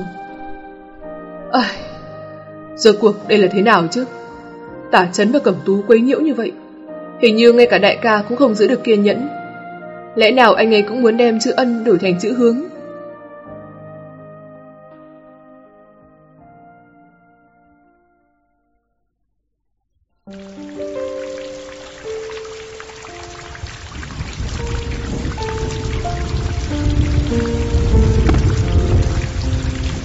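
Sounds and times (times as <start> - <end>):
opening musical passage: 0.0 - 19.0, 20.3 - 30.0
speech: 1.5 - 1.8, 2.8 - 4.2, 4.9 - 6.6, 7.2 - 9.4, 10.2 - 12.7
rain falling at night: 20.3 - 30.0.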